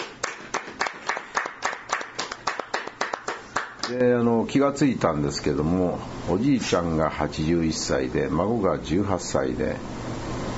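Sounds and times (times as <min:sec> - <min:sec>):
applause celebrating a birthday and a high school graduation: 0:00.0 - 0:04.0
speech: 0:03.9 - 0:10.0.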